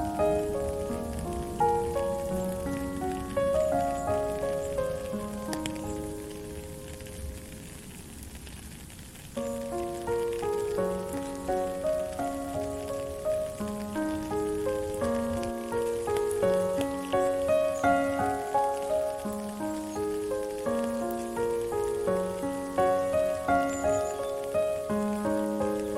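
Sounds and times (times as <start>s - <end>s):
gentle melody: 0.0s - 25.9s
steady rain: 0.0s - 25.9s.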